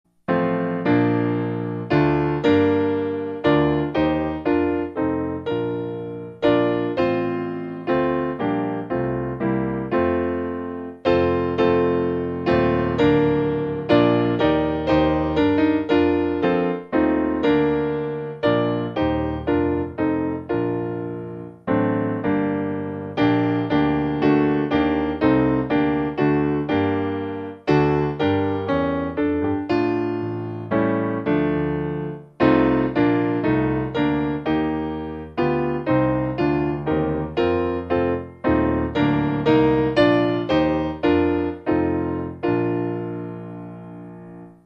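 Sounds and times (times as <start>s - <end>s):
piano playing a metrical psalm: 0.1s - 44.6s.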